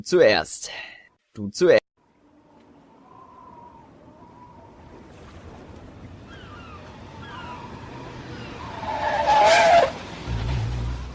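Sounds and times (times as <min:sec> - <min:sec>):
speech: 0:00.0 - 0:01.9
car tyres screeching as a car brakes to a stop: 0:06.8 - 0:11.0.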